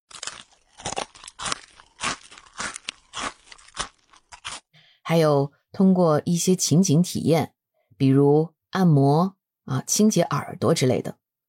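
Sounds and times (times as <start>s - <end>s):
person biting and chewing crunchy food such as apples or potato chips: 0.1s - 4.7s
speech: 5.1s - 11.2s.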